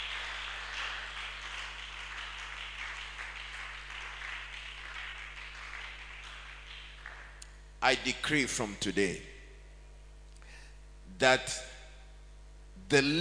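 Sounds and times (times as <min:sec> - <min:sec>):
crowd clapping together in sustained applause: 0:00.0 - 0:07.4
speech: 0:07.8 - 0:09.3, 0:11.2 - 0:11.7, 0:12.9 - 0:13.1.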